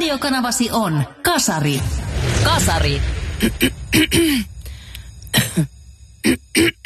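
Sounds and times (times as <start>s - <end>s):
speech: 0.1s - 4.5s, 5.3s - 6.8s
person clearing throat: 3.4s - 4.5s, 5.3s - 6.8s
person coughing in short raspy bursts: 3.4s - 4.5s, 5.3s - 6.8s.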